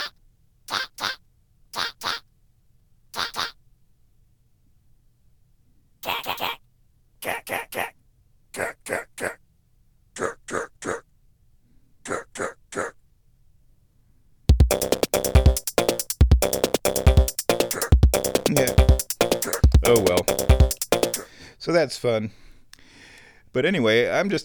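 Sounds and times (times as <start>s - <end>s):
small pocket synthesizer producing short bark-like electronic blips: 14.5s - 21.2s
loud dense looping beat with heavy kicks: 14.5s - 21.3s
speech: 21.8s - 22.5s, 23.6s - 24.4s.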